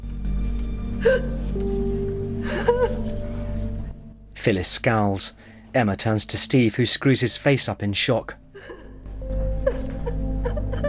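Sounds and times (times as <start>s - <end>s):
steady tonal background: 0.0s - 10.8s
speech: 1.0s - 1.8s, 4.4s - 8.8s
woman gasping and sobbing in a courtroom after a guilty verdict: 1.0s - 3.4s, 8.5s - 10.8s.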